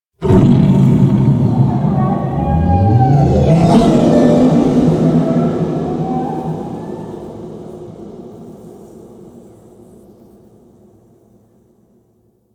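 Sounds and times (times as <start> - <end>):
shrill screams: 0.3 - 7.4.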